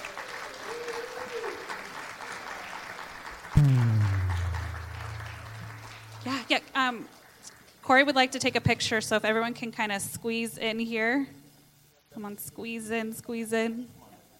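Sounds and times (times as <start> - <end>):
crowd at an event applauding: 0.0 - 6.5
loud low droning tone: 3.6 - 6.4
speech: 6.8 - 7.2, 7.9 - 11.4, 12.2 - 14.0.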